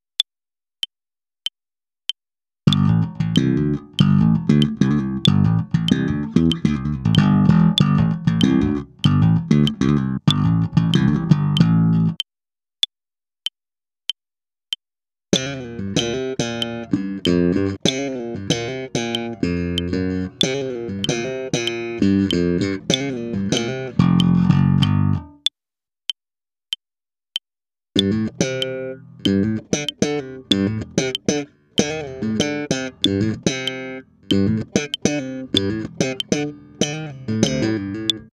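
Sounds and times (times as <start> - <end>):
electric bass played slap style: 2.7 - 12.2, 15.3 - 25.4, 28.0 - 38.3.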